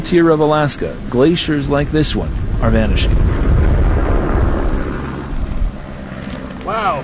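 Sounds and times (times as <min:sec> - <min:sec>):
speech: 0:00.1 - 0:03.6
helicopter flying overhead: 0:02.2 - 0:07.0.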